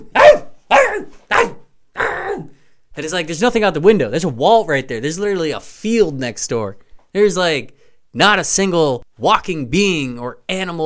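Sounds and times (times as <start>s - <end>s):
person's voice imitating a dog barking: 0.0s - 2.6s
speech: 3.0s - 10.8s.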